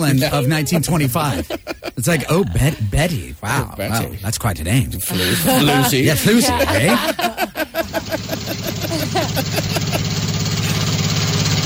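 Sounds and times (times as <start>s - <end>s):
laughter: 0.0s - 4.2s, 5.0s - 10.8s
speech: 0.0s - 7.5s
car engine sputtering, starting and idling: 7.9s - 11.6s.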